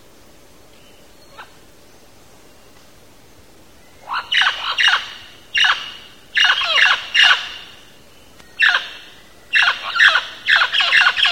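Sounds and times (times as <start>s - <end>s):
mealy parrot screeching in Belize: 4.1s - 7.6s, 9.6s - 11.3s.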